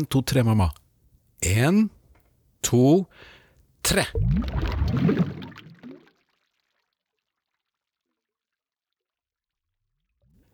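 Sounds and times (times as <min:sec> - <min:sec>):
speech: 0:00.0 - 0:00.8, 0:01.4 - 0:02.0, 0:02.6 - 0:05.4
bubbling underwater churning and gurgles: 0:04.1 - 0:06.1
splash of someone diving into a pool: 0:04.2 - 0:06.7.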